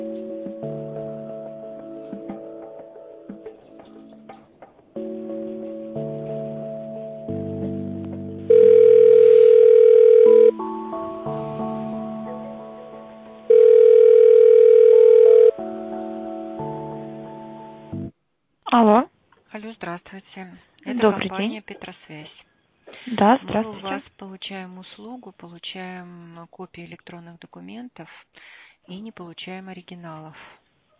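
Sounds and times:
telephone ringing tones while a call is transferred: 8.5 - 10.6, 13.5 - 15.6
speech: 19.8 - 30.6.

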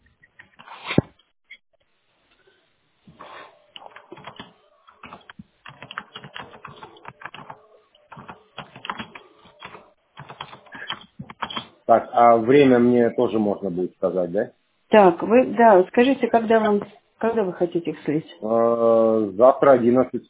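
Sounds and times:
computer keyboard typing while writing down appointment details: 3.8 - 11.8
speech: 11.9 - 20.2.

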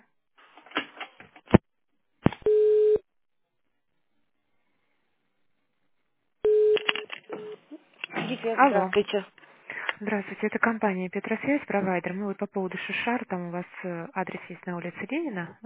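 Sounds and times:
telephone line tones while a call is transferred to an accounting department: 2.4 - 3.0, 6.5 - 7.6
speech: 8.5 - 9.4, 10.0 - 15.6.

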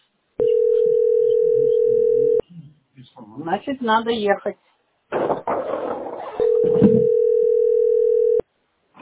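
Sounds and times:
telephone dial tone while placing a call: 0.4 - 2.4, 6.4 - 8.4
speech: 3.5 - 4.7.

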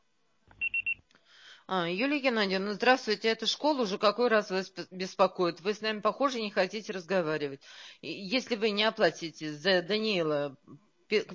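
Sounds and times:
voicemail system high-pitched beeps over a telephone line: 0.6 - 1.0
speech: 1.7 - 11.3.

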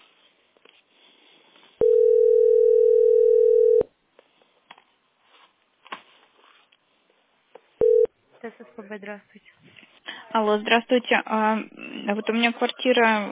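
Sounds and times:
phone line ringing tone while waiting in a queue: 1.8 - 3.9, 7.8 - 8.1
speech: 8.5 - 13.3.

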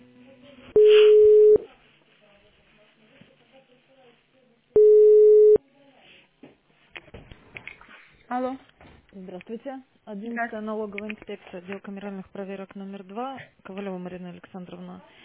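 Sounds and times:
faint noise: 0.0 - 15.2
telephone busy signal on a call to a tax inspection office: 0.8 - 1.6, 4.8 - 5.6
speech: 8.4 - 15.2.

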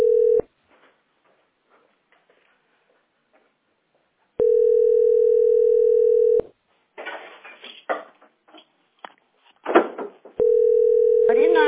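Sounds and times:
telephone line tone while on hold: 0.0 - 0.5, 4.4 - 6.5, 10.4 - 11.6.

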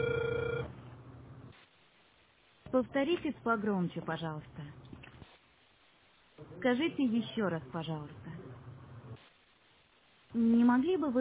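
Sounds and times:
telephone ringing tone while dialing: 0.0 - 0.7
speech: 2.7 - 4.9, 6.6 - 8.3, 10.3 - 11.1.

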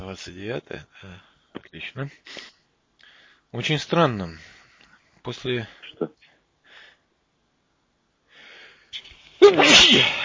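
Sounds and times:
speech: 0.1 - 2.6, 3.5 - 4.6, 5.2 - 6.2, 8.9 - 10.2
person sneezing: 9.4 - 10.2.

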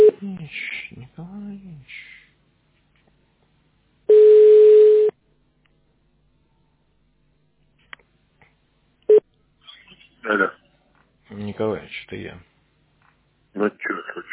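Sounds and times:
landline telephone line tone: 4.1 - 5.1
speech: 12.1 - 12.6.

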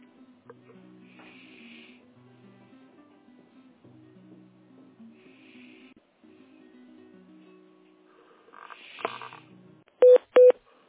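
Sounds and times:
telephone keypad touch-tone beeps during an office call transfer: 10.0 - 10.5.

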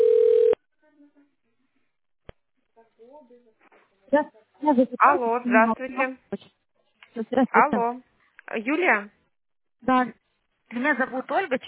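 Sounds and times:
short steady electronic telephone tone: 0.0 - 0.6
speech: 3.2 - 6.5, 7.2 - 9.2, 9.8 - 11.6.

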